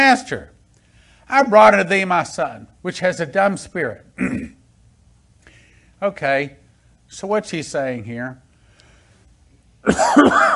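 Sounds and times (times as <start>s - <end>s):
speech: 0.1s - 0.6s, 1.3s - 4.5s, 6.0s - 8.4s, 9.8s - 10.5s
person coughing raspily: 4.2s - 4.6s, 9.8s - 10.5s.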